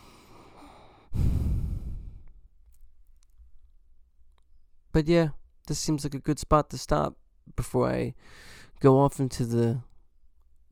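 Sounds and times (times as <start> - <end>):
obstructed nasal breathing through blocked nostril: 0.0 - 2.4, 8.2 - 8.7
speech: 5.0 - 9.9.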